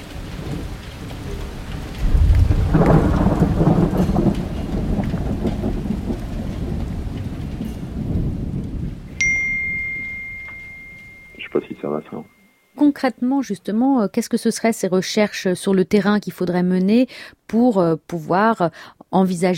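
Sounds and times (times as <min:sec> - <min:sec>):
thunder rumbling in a heavy May thunderstorm: 0:00.0 - 0:09.2
steady pouring rain in a heavy May thunderstorm: 0:00.0 - 0:12.0
high electronic ding: 0:09.2 - 0:12.8
speech: 0:13.0 - 0:19.5.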